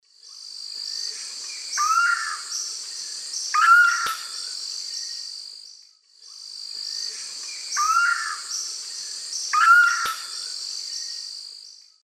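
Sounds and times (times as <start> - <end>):
Lipaugus vociferans calling in the Eastern Lowlands of South America: 1.8 - 2.6, 3.5 - 4.4, 7.8 - 8.5, 9.5 - 10.4.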